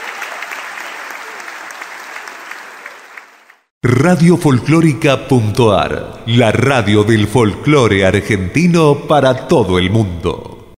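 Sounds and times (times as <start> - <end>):
audience applause: 0.0 - 3.7
speech: 3.8 - 10.5.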